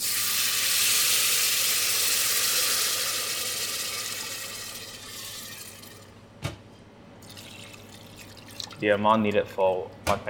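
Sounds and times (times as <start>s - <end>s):
light-brown onions with noodle seasoning frying in a pan: 0.0s - 5.4s
speech: 8.8s - 10.2s.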